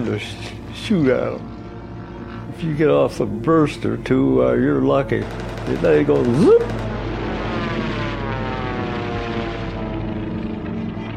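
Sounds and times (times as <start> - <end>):
speech: 0.0 - 1.6, 2.6 - 6.9
airplane engine droning overhead: 0.0 - 11.1.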